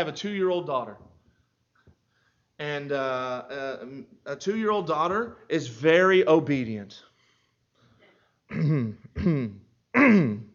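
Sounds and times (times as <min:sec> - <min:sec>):
speech: 0:00.0 - 0:01.1, 0:02.6 - 0:07.1, 0:08.5 - 0:10.5
person clearing throat close to the mic: 0:08.5 - 0:10.5.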